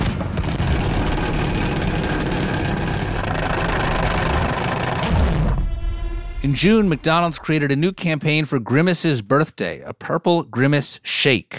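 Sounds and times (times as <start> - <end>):
salad spinner spinning with a rattling whir: 0.5 - 5.4
speech: 6.4 - 11.5.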